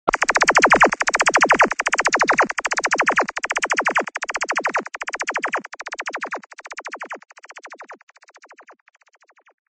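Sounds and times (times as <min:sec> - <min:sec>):
crazy laser shots: 0:00.1 - 0:07.0.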